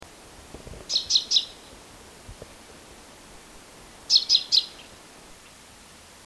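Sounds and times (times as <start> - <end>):
common chaffinch Fringilla coelebs calls: 0.9 - 1.7, 4.0 - 5.6.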